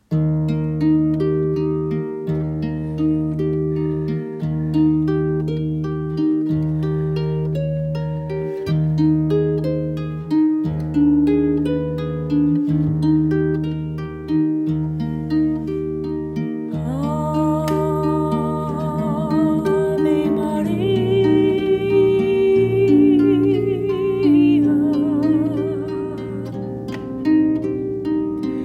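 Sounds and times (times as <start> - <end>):
harp: 0.0 - 28.6
person singing: 16.7 - 28.6.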